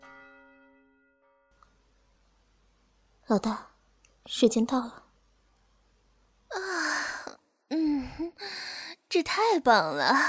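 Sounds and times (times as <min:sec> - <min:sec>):
deep clock bell striking eleven o'clock: 0:00.0 - 0:01.5
faint hum: 0:01.6 - 0:10.2
speech: 0:03.3 - 0:05.0, 0:09.1 - 0:10.2.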